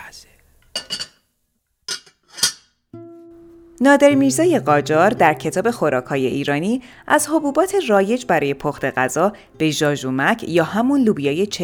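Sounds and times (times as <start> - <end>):
metal lid clinking shut on a cooking pot of ghormeh sabzi stew: 0.7 - 1.2, 1.9 - 2.7
speech: 3.8 - 11.6.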